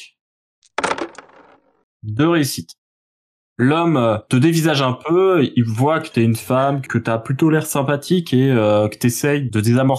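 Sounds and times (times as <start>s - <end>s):
dice rolling on a hard tabletop: 0.7s - 1.8s
speech: 2.0s - 2.8s, 3.6s - 9.9s.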